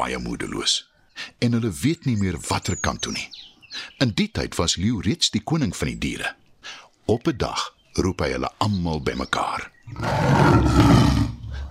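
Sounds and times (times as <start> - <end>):
speech: 0.0 - 11.2
lion roaring: 9.9 - 11.6.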